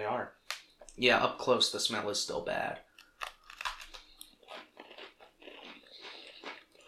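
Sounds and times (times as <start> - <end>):
speech: 0.1 - 0.4, 1.0 - 2.9
biting and chewing a crunchy cinnamon cookie: 2.9 - 6.8.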